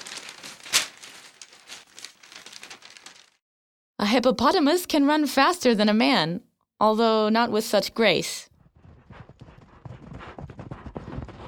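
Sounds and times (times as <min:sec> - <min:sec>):
paper crinkling and rustling: 0:00.0 - 0:03.4
speech: 0:04.1 - 0:08.5.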